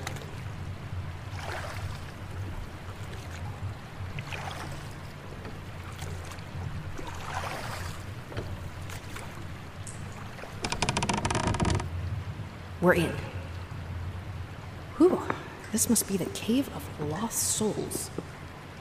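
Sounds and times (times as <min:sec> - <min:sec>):
rowboat oars splashing in calm water: 0:00.0 - 0:12.0
steady low rush of water: 0:00.0 - 0:18.7
speech: 0:12.8 - 0:13.3, 0:15.8 - 0:18.2.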